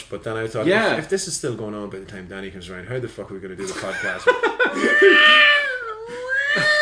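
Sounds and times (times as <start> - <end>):
speech: 0.1 - 5.6
laughter: 3.6 - 6.8
cat yowling scream: 4.8 - 6.8.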